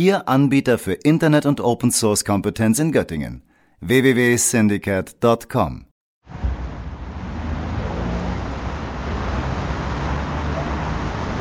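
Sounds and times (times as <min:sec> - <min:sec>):
speech: 0:00.0 - 0:06.5
traffic flowing along a busy main road: 0:06.3 - 0:11.3.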